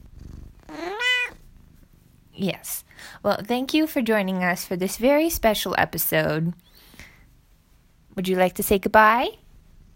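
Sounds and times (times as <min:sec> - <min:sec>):
cat purring: 0:00.0 - 0:02.8
cat meowing: 0:00.6 - 0:01.4
speech: 0:02.4 - 0:06.7, 0:08.2 - 0:09.4.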